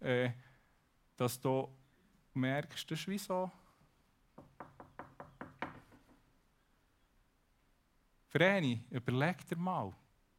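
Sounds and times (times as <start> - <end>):
speech: 0.0 - 0.4, 1.2 - 1.8, 2.4 - 3.6, 8.3 - 10.0
soft knocking on a wooden door: 4.4 - 6.2.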